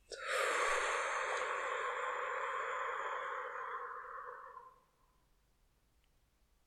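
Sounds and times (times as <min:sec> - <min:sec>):
slow deep exhale during breathing exercise: 0:00.0 - 0:05.1.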